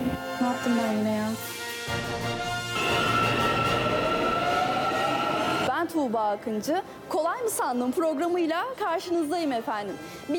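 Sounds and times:
speech: 0.6 - 2.5, 6.0 - 10.3
metro train rumbling on the line: 2.8 - 5.7.

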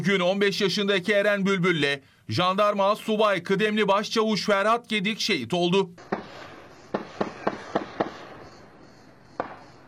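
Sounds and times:
speech: 0.0 - 6.4
pistol gunshots during an armed clash between security forces and militants in Maçka, Trabzon: 6.0 - 8.7, 9.4 - 9.8.

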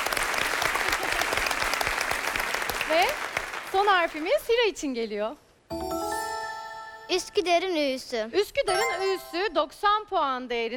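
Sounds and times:
quiz-show audience applause: 0.0 - 4.2
speech: 2.9 - 6.0, 7.1 - 10.7.

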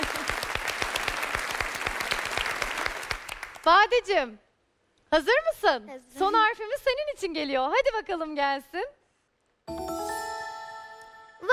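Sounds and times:
audience applause during a quiz game show: 0.0 - 3.7
speech: 3.7 - 4.4, 5.1 - 9.0.

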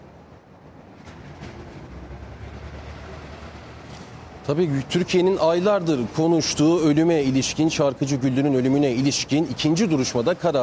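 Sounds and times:
high-speed train passing: 0.0 - 8.3
speech: 4.5 - 10.6.

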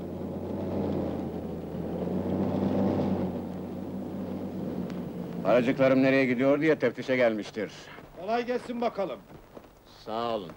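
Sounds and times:
car engine rumbling as car arrives: 0.0 - 8.1
speech: 5.5 - 10.5.

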